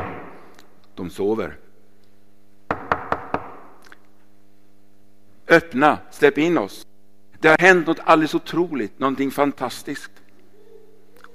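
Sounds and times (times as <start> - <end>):
speech: 1.0 - 1.6, 5.5 - 10.2
knocking on a door: 2.7 - 3.6.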